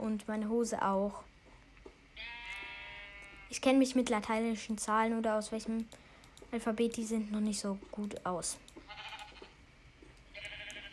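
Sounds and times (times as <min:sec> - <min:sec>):
speech: 0:00.0 - 0:01.4, 0:03.5 - 0:09.1
sheep bleating: 0:02.2 - 0:03.5, 0:08.9 - 0:09.5, 0:10.3 - 0:10.9.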